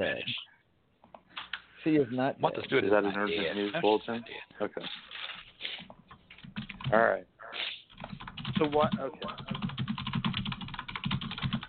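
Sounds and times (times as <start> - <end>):
speech: 1.8 - 5.1, 6.9 - 7.3, 8.6 - 9.5
rapid forceful typing on computer keyboard: 6.2 - 7.0, 7.9 - 11.6.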